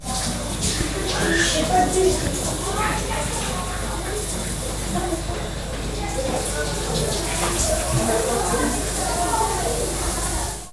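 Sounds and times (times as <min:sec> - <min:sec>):
shower running: 0:00.0 - 0:10.7.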